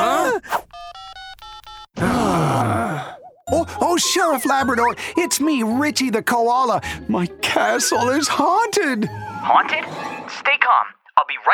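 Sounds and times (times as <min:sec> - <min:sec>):
mobile phone keypad tones while dialing: 0:00.8 - 0:01.9
vocal sounds: 0:02.0 - 0:05.2
speech: 0:04.0 - 0:11.5.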